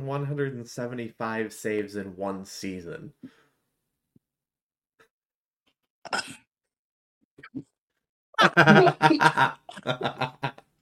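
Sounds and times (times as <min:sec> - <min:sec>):
speech: 0:00.0 - 0:03.4, 0:06.0 - 0:06.4, 0:08.4 - 0:10.6
harsh hacking coughing fit: 0:06.1 - 0:06.5
laughter: 0:08.4 - 0:10.6.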